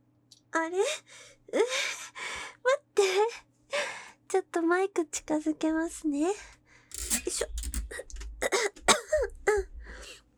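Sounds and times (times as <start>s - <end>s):
speech: 0.6s - 2.0s, 4.3s - 6.6s, 7.3s - 7.6s
person coughing: 8.4s - 9.6s.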